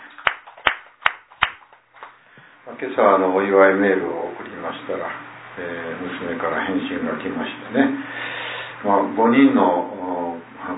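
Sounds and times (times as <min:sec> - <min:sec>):
slow handclaps celebrating a boy's fifteenth birthday: 0:00.0 - 0:02.2
speech: 0:02.6 - 0:10.7.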